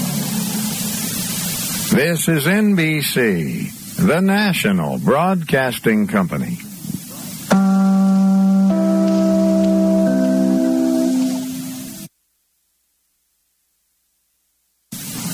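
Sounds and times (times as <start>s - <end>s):
heavy rain: 0.0s - 12.1s, 14.9s - 15.3s
speech: 1.9s - 6.7s
sustained organ-like chord tones: 7.5s - 12.1s.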